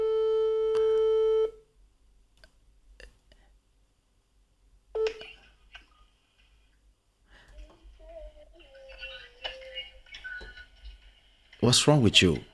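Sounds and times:
telephone dialing tone: 0.0s - 1.6s
speech: 11.6s - 12.5s.

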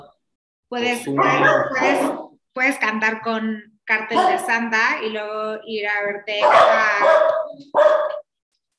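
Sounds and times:
speech: 0.7s - 8.2s
loud harsh drawn-out dog barks: 1.1s - 2.4s, 4.1s - 4.5s, 6.4s - 8.3s.

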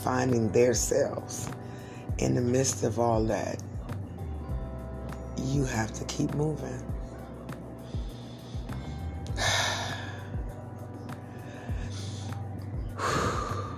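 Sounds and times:
speech: 0.0s - 3.7s, 5.4s - 6.9s
steady low hum: 0.0s - 13.7s
person taking deep breaths: 7.8s - 10.5s, 11.2s - 13.7s.

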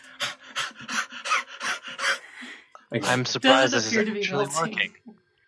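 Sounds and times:
people imitating quick rhythmic panting breathing on a face: 0.0s - 2.7s
speech: 2.9s - 5.1s.

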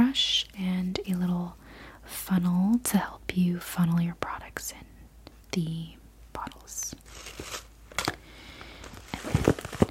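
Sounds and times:
speech: 0.2s - 0.6s, 2.3s - 4.9s, 5.6s - 7.0s
clear quarter-sized plastic toiletry bag crinkling: 7.0s - 9.8s.

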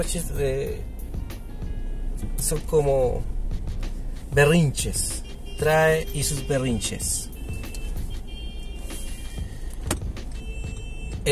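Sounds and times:
speech: 0.0s - 1.1s, 2.2s - 3.3s, 4.3s - 7.3s
car engine and road rumble driving through heavy traffic: 0.0s - 11.3s
sharp clicks and knocks: 9.7s - 10.8s.

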